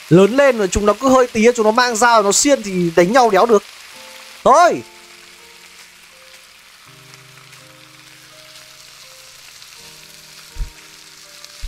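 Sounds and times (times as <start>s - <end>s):
food frying in a pan in a video game cooking scene: 0.0s - 11.6s
speech: 0.1s - 3.8s, 4.4s - 4.9s
soft low thumps: 10.5s - 10.8s.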